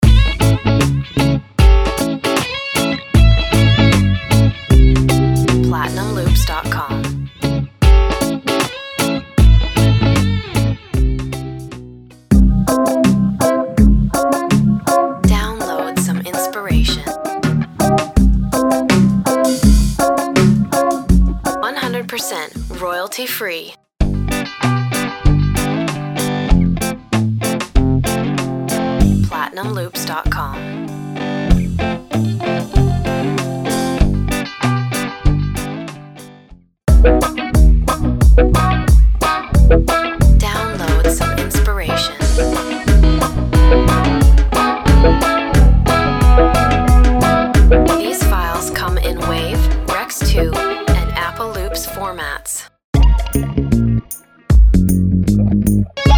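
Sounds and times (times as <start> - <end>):
reggae guitar loop: 0.0 - 22.9, 24.2 - 36.3, 36.9 - 52.1, 53.0 - 56.1
voice with ducking: 5.6 - 7.1, 15.3 - 17.2, 21.6 - 23.8, 29.3 - 30.6, 40.4 - 42.3, 48.0 - 52.7.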